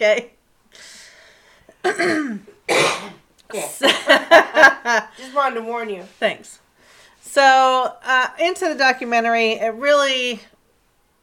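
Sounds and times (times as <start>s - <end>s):
speech: 0.0s - 1.0s, 1.8s - 6.6s, 7.4s - 10.5s
person clearing throat: 1.8s - 4.1s
person hacking coughs: 1.8s - 4.2s.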